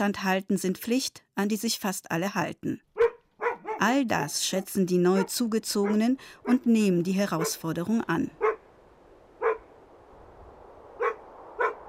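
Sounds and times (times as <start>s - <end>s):
speech: 0.0s - 2.9s, 3.8s - 8.4s
single dog barking at a distance: 3.0s - 3.9s, 5.1s - 6.7s, 7.3s - 7.7s, 8.4s - 8.7s, 9.4s - 9.7s, 11.0s - 11.8s
steady low rush of wind: 8.1s - 11.8s.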